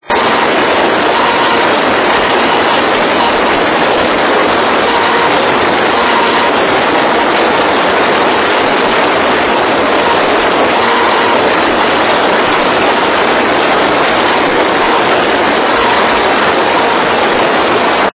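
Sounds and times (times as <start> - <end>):
NFM demodulated radio signal: 0.0 - 18.1.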